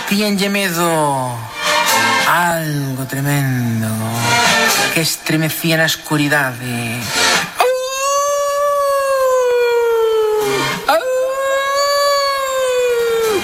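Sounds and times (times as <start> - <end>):
speech: 0.1 - 7.3
wolf howling: 7.6 - 13.4.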